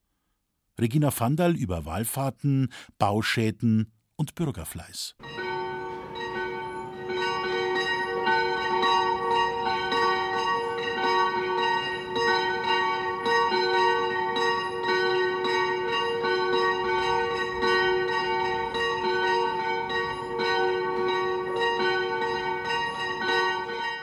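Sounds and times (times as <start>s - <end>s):
speech: 0.8s - 5.4s
church bells ringing in a dense sustained peal: 5.2s - 24.0s.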